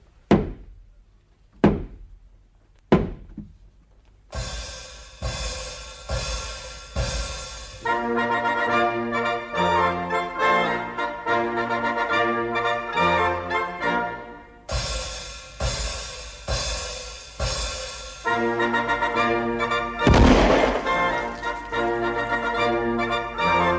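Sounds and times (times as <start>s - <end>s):
knocks against a door from an opera recording: 0.3s - 0.7s, 1.6s - 2.1s, 2.9s - 3.6s
music from a 1954 opera recording: 1.6s - 23.7s.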